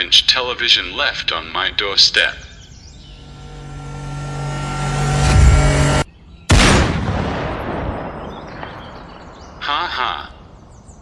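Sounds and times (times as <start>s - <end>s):
speech: 0.0s - 2.5s
steady loud noise: 3.2s - 6.1s
gunshot in a video shooting game: 6.5s - 9.8s.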